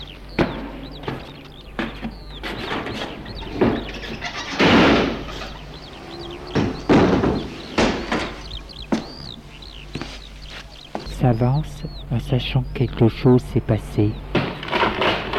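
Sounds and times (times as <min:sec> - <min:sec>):
birds chirping faintly: 0:00.0 - 0:15.3
house gate pushed open with metallic clanks and scraping creak: 0:00.5 - 0:09.3, 0:14.3 - 0:15.3
speech: 0:11.2 - 0:14.4.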